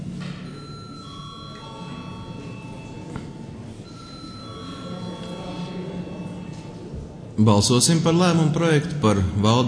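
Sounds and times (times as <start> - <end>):
low murmur of room noise: 0.0 - 9.6
parliamentary session bell ringing in Latvia's Saeima: 0.6 - 3.1, 3.8 - 6.5
speech: 7.4 - 9.6.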